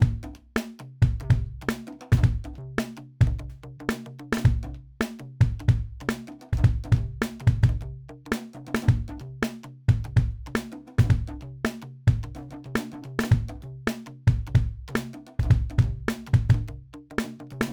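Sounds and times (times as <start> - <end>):
upbeat kick drum: 0.0 - 0.3, 1.0 - 1.6, 2.2 - 2.5, 3.2 - 3.5, 4.5 - 4.7, 5.4 - 6.0, 6.6 - 7.9, 8.9 - 9.2, 9.9 - 10.4, 11.0 - 11.4, 12.1 - 12.3, 13.3 - 13.5, 14.3 - 14.8, 15.4 - 16.7
snare drum: 0.0 - 7.8, 8.7 - 17.7
percussion: 0.0 - 17.7.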